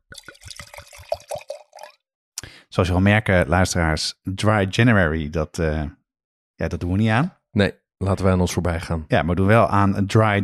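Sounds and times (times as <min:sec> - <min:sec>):
red wine glugging and splashing into a glass: 0:00.0 - 0:02.0
speech: 0:02.8 - 0:06.0, 0:06.6 - 0:10.4.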